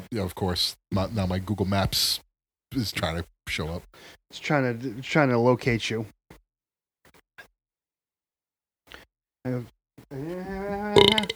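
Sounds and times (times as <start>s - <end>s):
speech: 0.1s - 6.2s, 9.4s - 11.3s
loud drawn-out croaky burp: 10.2s - 11.3s.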